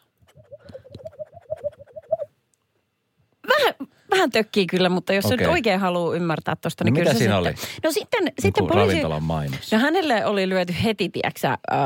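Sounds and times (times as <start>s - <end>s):
person imitating pigeon cooing: 0.4s - 2.3s
speech: 4.2s - 11.8s.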